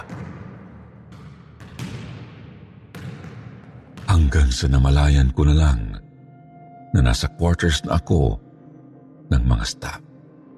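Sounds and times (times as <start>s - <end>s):
ball bouncing in a reverberant space: 0.0s - 4.1s
speech: 4.2s - 6.0s, 6.9s - 8.4s, 9.3s - 10.0s.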